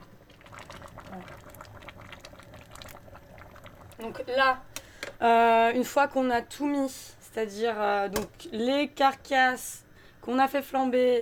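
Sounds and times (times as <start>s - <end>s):
coconut cream pouring into a saucepan: 0.0s - 4.2s
speech: 4.0s - 11.1s.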